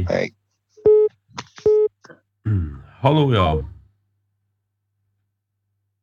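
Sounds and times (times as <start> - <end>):
speech: 0.0 - 0.4, 2.5 - 3.8
telephone busy tone beeps after a caller hangs up: 0.9 - 1.1.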